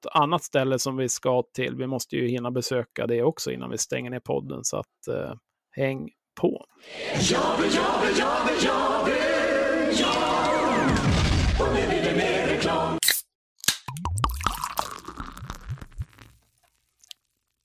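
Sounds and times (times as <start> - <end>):
speech: 0.0 - 12.9
drink pouring into a glass: 13.9 - 17.5
soft fizzing crackles of a drink: 14.2 - 17.6.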